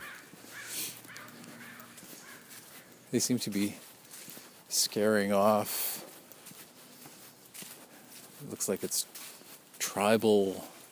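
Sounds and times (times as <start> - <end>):
crows cawing: 0.0 - 3.1
faint outdoor noise: 0.0 - 10.9
speech: 3.1 - 3.9, 4.8 - 5.9, 8.5 - 9.4, 10.0 - 10.7.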